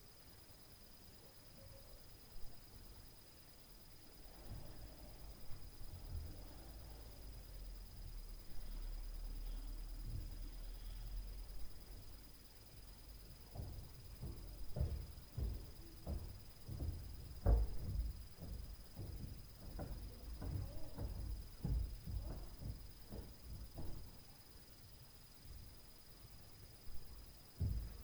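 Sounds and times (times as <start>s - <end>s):
night noise: 0.0s - 28.0s
stairs noise: 13.1s - 24.2s, 26.9s - 28.0s.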